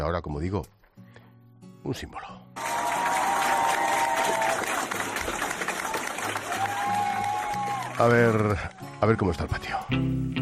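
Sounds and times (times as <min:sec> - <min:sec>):
speech: 0:00.1 - 0:00.8, 0:01.8 - 0:02.4, 0:08.0 - 0:10.4
classmates and teachers cheering: 0:02.6 - 0:09.2
classmates and teachers applauding: 0:02.6 - 0:09.4.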